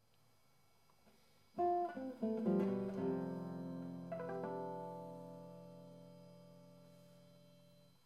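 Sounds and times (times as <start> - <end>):
harmonics on adjacent strings: 1.6 - 7.8.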